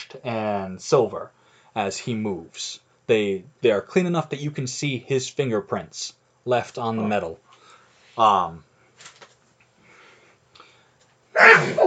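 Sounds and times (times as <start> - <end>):
speech: 0.1 - 7.5, 8.2 - 9.1
breathing: 1.4 - 1.8, 7.5 - 8.2, 9.8 - 11.1
loud sneeze: 11.3 - 11.8.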